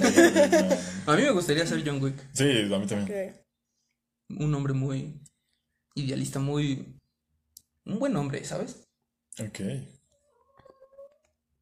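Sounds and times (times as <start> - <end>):
laughter: 0.0 - 1.1
speech: 0.2 - 3.4, 4.3 - 5.3, 6.0 - 7.0, 7.9 - 8.8, 9.4 - 10.0
cat meowing: 10.2 - 11.3.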